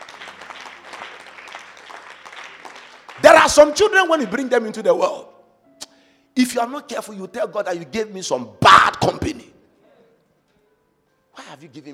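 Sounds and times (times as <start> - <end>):
room full of people applauding: 0.0 - 4.0
speech: 3.4 - 5.3, 6.4 - 9.5, 11.6 - 11.9.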